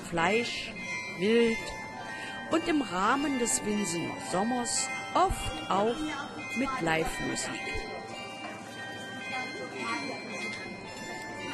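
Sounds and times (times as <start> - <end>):
carillon chiming from a stable building: 0.0 - 11.5
speech: 0.1 - 1.8, 2.5 - 8.0.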